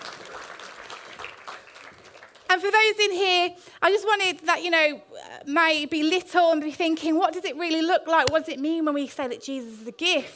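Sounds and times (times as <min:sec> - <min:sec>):
audience clapping: 0:00.0 - 0:02.4
speech: 0:02.5 - 0:10.3.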